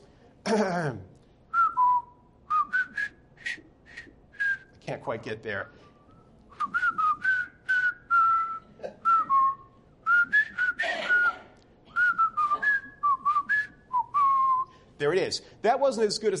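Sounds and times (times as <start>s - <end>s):
speech: 0.5s - 1.1s, 4.9s - 5.8s, 15.0s - 16.3s
person whistling a jaunty march tune from a film: 1.5s - 4.7s, 5.8s - 14.8s.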